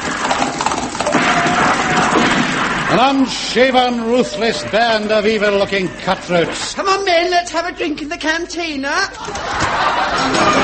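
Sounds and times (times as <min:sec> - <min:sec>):
horses' hooves clip-clopping as riders come into town at night: 0:00.0 - 0:02.3
speech: 0:02.9 - 0:10.6
laughter: 0:03.1 - 0:06.6, 0:09.1 - 0:10.6.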